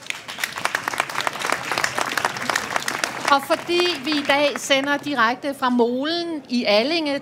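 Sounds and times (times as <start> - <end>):
audience applauding panel guests: 0.0 - 5.2
speech: 3.3 - 7.2.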